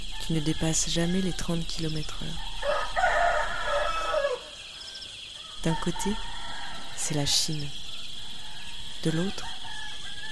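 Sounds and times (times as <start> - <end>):
speech: 0.3 - 2.5, 5.6 - 6.3, 7.0 - 7.8, 9.0 - 9.5
rooster crowing on a rural country road near the China–Laos border: 2.4 - 7.2, 8.2 - 10.2.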